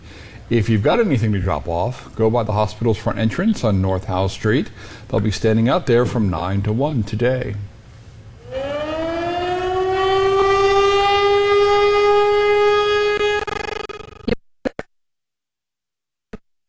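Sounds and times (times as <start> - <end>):
speech: 0.5 - 7.7
warning siren test wailing: 8.4 - 14.2.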